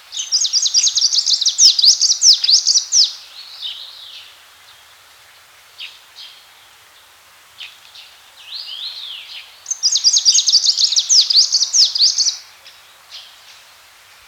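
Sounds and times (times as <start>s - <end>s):
faint background hiss: 0.0s - 14.2s
greenish warbler singing: 0.2s - 3.8s, 8.6s - 12.4s.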